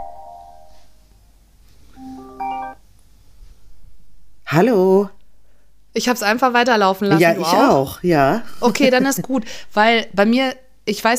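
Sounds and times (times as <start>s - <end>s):
phone ringing with an incoming call: 2.0s - 2.8s
speech: 4.5s - 5.2s, 6.0s - 11.1s.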